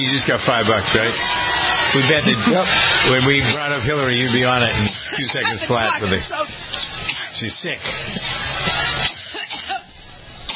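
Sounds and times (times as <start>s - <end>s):
speech: 0.0s - 9.1s
laughter: 1.2s - 6.4s, 7.8s - 9.9s
dry hacking cough: 4.8s - 5.7s, 7.0s - 7.4s, 9.0s - 9.9s.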